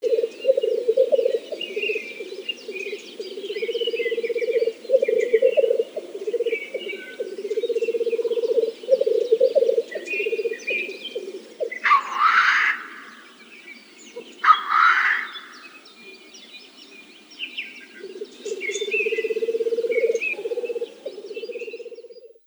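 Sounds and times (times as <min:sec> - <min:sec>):
black grouse calling: 0:00.0 - 0:16.2, 0:17.7 - 0:22.2.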